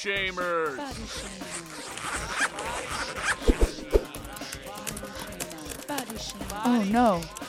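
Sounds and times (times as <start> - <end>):
speech: 0.0 - 3.6, 6.2 - 7.4
typing on computer keyboards: 4.1 - 7.4.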